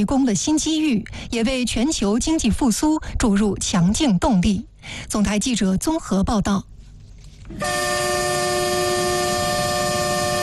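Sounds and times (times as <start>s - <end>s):
speech: 0.0s - 6.7s, 7.5s - 7.8s
freight train horn blasting: 7.5s - 10.4s.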